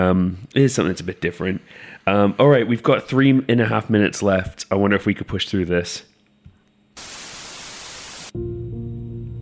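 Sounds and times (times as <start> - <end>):
speech: 0.0 - 6.1, 8.4 - 8.6
low electrical hum with faint tonal buzzing: 0.0 - 8.3
harsh static hiss: 7.0 - 8.4.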